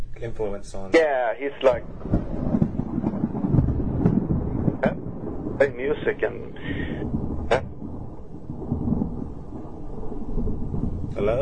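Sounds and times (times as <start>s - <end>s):
speech: 0.2s - 2.2s, 5.6s - 7.7s, 11.2s - 11.3s
rolling thunder from a lightning storm outside: 0.8s - 11.3s.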